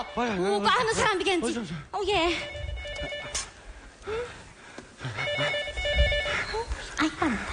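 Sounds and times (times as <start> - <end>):
speech: 0.0 - 3.2, 4.0 - 4.4
telephone ringing with electronic trilling for a patient: 2.4 - 3.5, 5.2 - 6.5.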